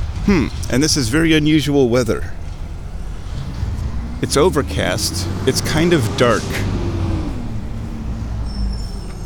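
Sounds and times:
garbage or recycling truck engine rumbling on an overcast, misty day: 0.0s - 9.2s
speech: 0.2s - 2.4s, 4.2s - 6.8s.

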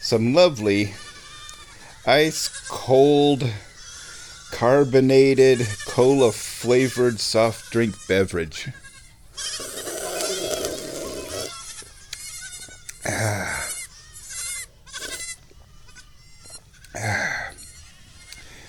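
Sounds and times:
speech: 0.1s - 1.0s, 2.0s - 3.7s, 4.6s - 8.8s
baby goats bleating: 0.6s - 18.6s.

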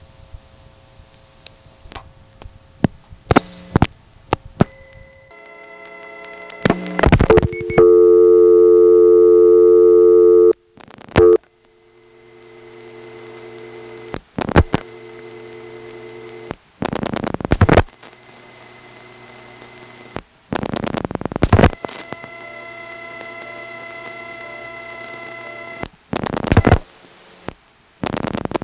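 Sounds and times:
quiet hum on a 1970s telephone line: 0.0s - 28.6s
loud steady tone on a 1970s telephone line: 4.6s - 16.6s, 17.8s - 20.2s, 21.6s - 26.8s.

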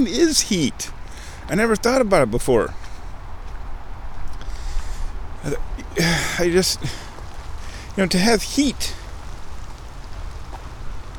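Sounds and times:
speech: 0.0s - 2.8s, 5.4s - 7.0s, 8.0s - 9.0s
steady rain patter: 4.5s - 11.1s.

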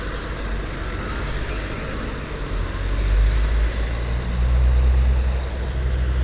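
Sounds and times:
constant road noise: 0.1s - 6.2s
heavy truck engine rumbling past: 5.1s - 6.2s.

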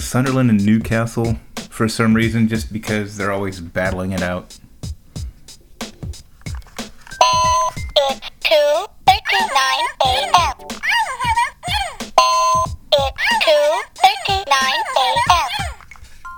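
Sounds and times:
speech: 0.0s - 4.6s, 8.5s - 10.7s
electronic clock alarm beeping: 7.2s - 8.4s, 9.1s - 16.3s
busy chattering voices: 7.5s - 12.1s, 12.9s - 15.8s.

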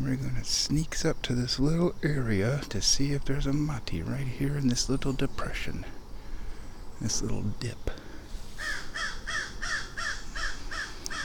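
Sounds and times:
speech: 0.0s - 6.0s, 7.0s - 8.0s
crow cawing: 8.6s - 11.2s.

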